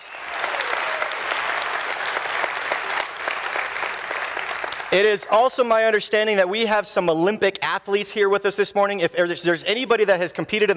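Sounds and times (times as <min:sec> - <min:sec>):
audience applauding in a room: 0:00.0 - 0:05.7
speech: 0:04.9 - 0:10.7.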